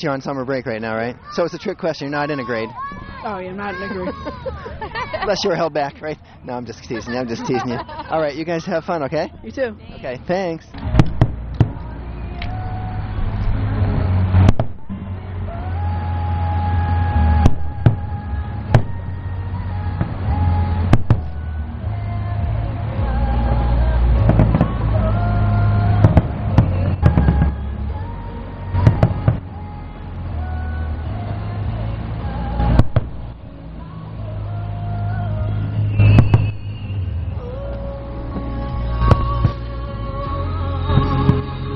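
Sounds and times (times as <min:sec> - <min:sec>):
speech: 0:00.0 - 0:10.9
crowd noise: 0:00.0 - 0:41.7
steady low rumble of traffic: 0:00.0 - 0:41.7
laughter: 0:03.5 - 0:09.4
fireworks popping and thudding: 0:10.7 - 0:12.5, 0:13.3 - 0:15.1, 0:20.0 - 0:21.4, 0:24.2 - 0:25.0, 0:25.9 - 0:27.6, 0:28.8 - 0:29.5, 0:32.7 - 0:33.4, 0:35.6 - 0:37.3.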